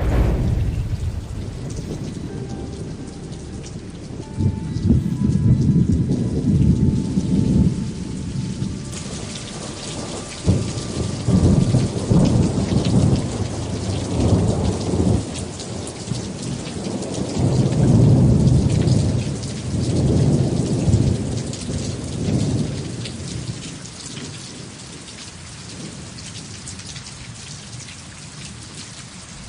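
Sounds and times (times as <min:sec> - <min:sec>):
deep rolling thunder rumbling: 0:00.0 - 0:23.6
heavy rain pouring: 0:00.0 - 0:29.4.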